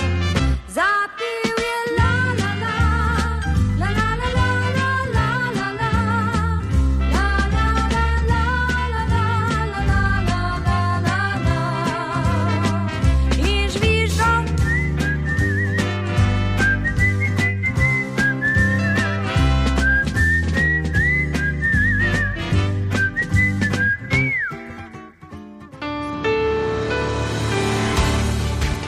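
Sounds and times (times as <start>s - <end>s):
full instrumental band backing: 0.0s - 9.0s, 9.7s - 28.8s
person whistling a lively gliding melody: 14.4s - 25.2s.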